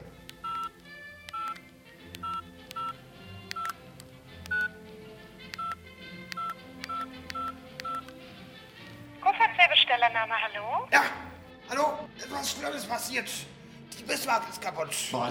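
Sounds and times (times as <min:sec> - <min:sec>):
mobile phone keypad dialing tones: 0:00.3 - 0:03.8, 0:04.4 - 0:04.8, 0:05.5 - 0:08.2
speech: 0:10.2 - 0:15.2.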